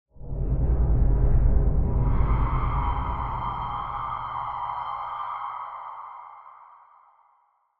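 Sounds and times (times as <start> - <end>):
Sylenth1 synth pad: 0.2 - 7.0.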